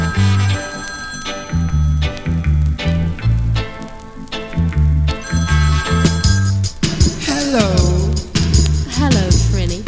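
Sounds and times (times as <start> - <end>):
loud bass-heavy music with a thumping rhythm: 0.0 - 0.6, 1.5 - 3.8, 4.5 - 9.8
telephone ringing: 0.0 - 2.3, 5.2 - 6.7.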